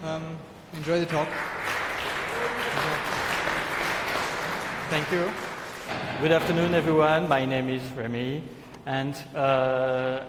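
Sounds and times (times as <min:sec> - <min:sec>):
speech: 0:00.1 - 0:01.6, 0:04.9 - 0:10.2
audience applauding at a technical conference talk: 0:00.9 - 0:05.9.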